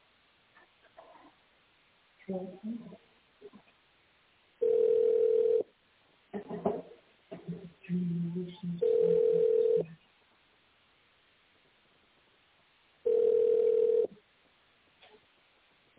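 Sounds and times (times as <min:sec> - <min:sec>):
speech: 0:02.3 - 0:03.1
telephone keypad tones through a narrow phone line: 0:04.6 - 0:05.6, 0:08.8 - 0:09.9, 0:13.1 - 0:14.1.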